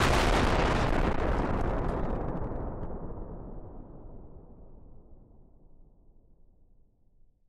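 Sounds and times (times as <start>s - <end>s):
distorted explosion blast: 0.0s - 5.1s.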